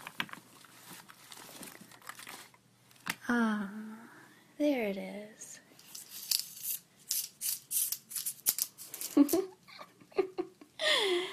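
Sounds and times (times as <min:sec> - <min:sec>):
speech: 0:03.3 - 0:03.8, 0:04.6 - 0:05.4
clothespins on a zip-strip clothesline clacking and rattling: 0:05.8 - 0:09.4
person laughing or murmuring: 0:09.0 - 0:11.3.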